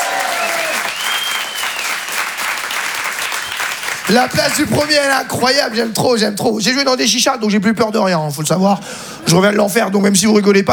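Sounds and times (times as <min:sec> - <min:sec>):
audience at a comedy show applauding and cheering: 0:00.0 - 0:06.0
whistle: 0:00.6 - 0:02.1, 0:02.8 - 0:03.8
speech: 0:04.1 - 0:10.7.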